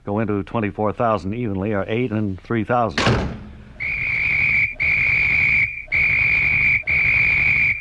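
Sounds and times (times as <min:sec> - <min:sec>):
speech: 0:00.0 - 0:03.4
man blowing a whistle: 0:03.7 - 0:07.7.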